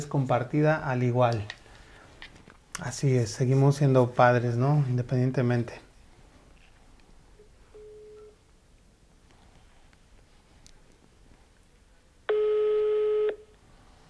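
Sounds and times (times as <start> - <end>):
speech: 0.0 - 1.6, 2.8 - 5.8
ringback tone of an outgoing phone call: 7.8 - 8.4, 12.3 - 13.4.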